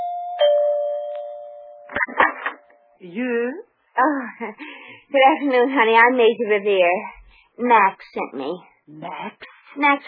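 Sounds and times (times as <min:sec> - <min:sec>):
doorbell ringing at a large country-club home: 0:00.0 - 0:01.9
speech: 0:03.0 - 0:10.0.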